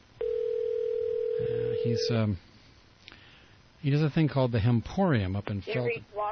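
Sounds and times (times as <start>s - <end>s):
telephone line ringing tone on an outgoing call: 0.2s - 2.2s
speech: 1.9s - 2.5s, 3.8s - 6.3s.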